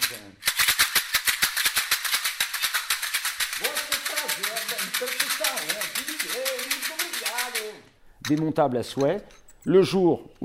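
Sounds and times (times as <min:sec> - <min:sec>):
homemade chocalho samba shaker being shaken: 0:00.0 - 0:07.9
speech: 0:05.0 - 0:10.4.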